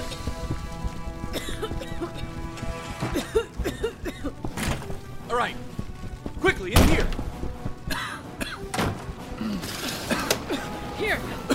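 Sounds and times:
commotion: 0:00.0 - 0:11.5
doors slamming shut: 0:04.5 - 0:05.0, 0:06.7 - 0:07.2, 0:08.7 - 0:09.2.

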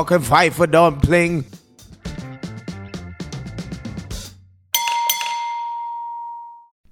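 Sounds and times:
speech: 0:00.0 - 0:01.6
plinking melodic notes: 0:04.8 - 0:06.6
bright bell strike: 0:04.8 - 0:06.7.

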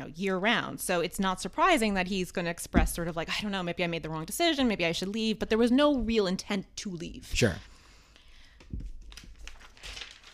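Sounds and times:
speech: 0:00.1 - 0:07.7
paper pages being turned: 0:08.6 - 0:10.3.

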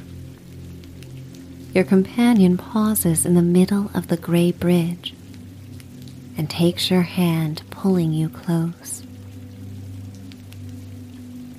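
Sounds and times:
drip-like ticks: 0:00.0 - 0:06.6, 0:09.0 - 0:11.5
steady soft rainfall: 0:00.0 - 0:11.5
speech: 0:01.8 - 0:05.2, 0:06.4 - 0:09.0.

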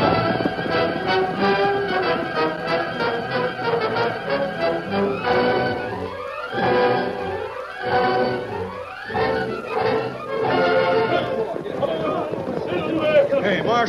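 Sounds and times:
galloping horses hoofbeats: 0:00.0 - 0:13.8.

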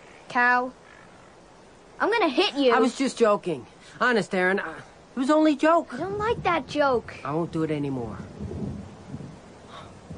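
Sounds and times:
speech: 0:00.4 - 0:00.8, 0:02.0 - 0:08.4
low thunder rumbling before a storm: 0:08.3 - 0:09.4.

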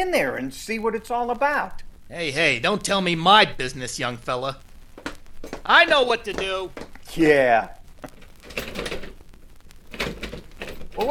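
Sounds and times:
speech: 0:00.0 - 0:04.7, 0:05.4 - 0:07.8
stuck door rattling against its frame: 0:05.0 - 0:07.0, 0:08.1 - 0:09.2, 0:09.9 - 0:11.0.

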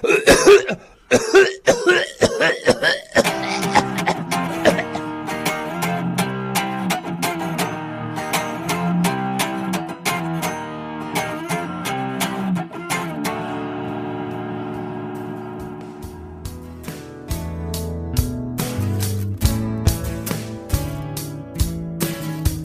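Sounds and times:
harsh coughing: 0:00.0 - 0:05.1
music playing: 0:03.2 - 0:22.6.

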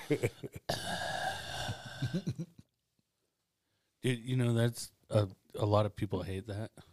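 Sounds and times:
speech: 0:00.1 - 0:02.6, 0:04.0 - 0:06.9
person imitating heavy raspy mouth breathing of a creepy phone caller: 0:00.7 - 0:02.3.

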